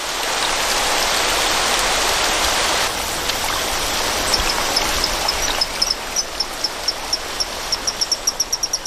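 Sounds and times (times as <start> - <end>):
rushing stream water at dusk: 0.0 - 8.8.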